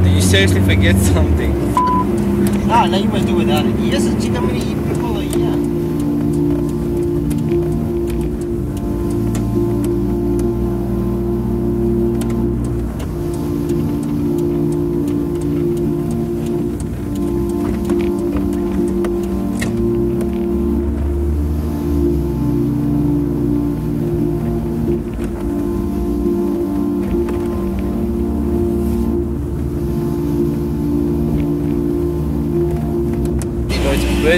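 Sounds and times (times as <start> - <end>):
car engine droning while cruising on a highway: 0.0 - 34.3
low road rumble: 0.0 - 34.3
speech: 0.3 - 1.9, 2.7 - 5.4.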